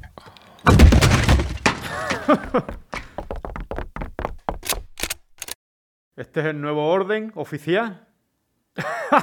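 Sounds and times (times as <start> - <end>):
door crashing and splintering: 0.6 - 3.1
door being battered down in a mayor's office: 0.7 - 3.2
speech: 2.3 - 2.8, 6.2 - 8.1, 8.7 - 9.2.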